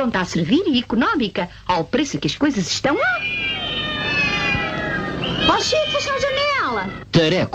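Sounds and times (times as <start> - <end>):
speech: 0.0 - 3.4, 5.5 - 7.5
faint hum of noise: 0.0 - 7.5
cat meowing in a cat food advert: 3.0 - 7.1.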